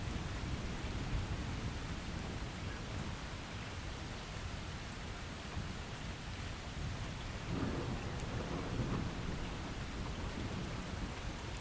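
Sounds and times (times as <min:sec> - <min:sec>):
heavy rain in a thunderstorm: 0:00.0 - 0:11.5
thunder rumble: 0:07.4 - 0:11.4.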